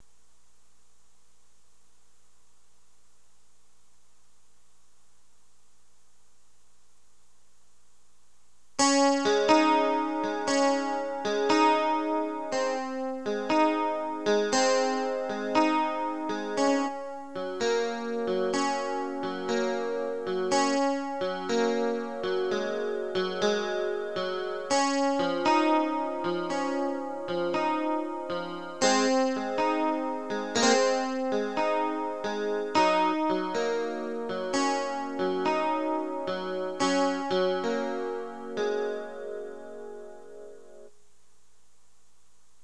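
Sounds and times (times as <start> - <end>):
clean electric guitar with chorus effect: 8.8 - 40.9.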